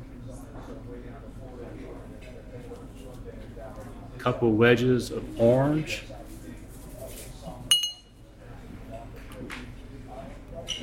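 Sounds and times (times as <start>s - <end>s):
low murmur of voices: 0.0s - 10.8s
speech: 0.7s - 6.2s
cherry dropping into an old-fashioned glass: 7.7s - 8.1s.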